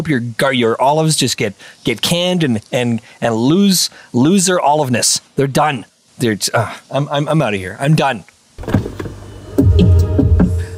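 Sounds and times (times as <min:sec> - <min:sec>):
speech: 0:00.0 - 0:08.9
low mechanical hum: 0:08.5 - 0:10.7
car door latch clicks and clunks: 0:08.6 - 0:09.2.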